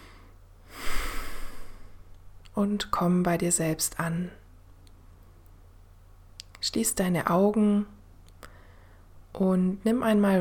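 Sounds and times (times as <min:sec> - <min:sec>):
deep breath: 0:00.0 - 0:02.1, 0:08.4 - 0:09.2
speech: 0:02.6 - 0:04.4, 0:06.7 - 0:08.0, 0:09.4 - 0:10.3.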